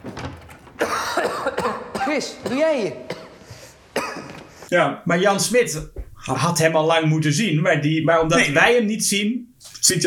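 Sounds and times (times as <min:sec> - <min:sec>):
person coughing harshly: 0:00.8 - 0:03.4, 0:04.0 - 0:04.4
speech: 0:02.1 - 0:03.1, 0:04.7 - 0:10.0.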